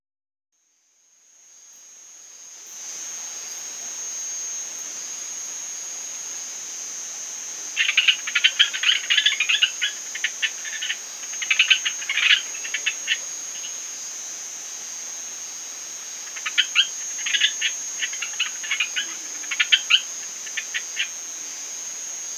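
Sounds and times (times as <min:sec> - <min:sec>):
Eleutherodactylus zeuctotylus calling: 0:07.5 - 0:14.0, 0:15.9 - 0:22.3.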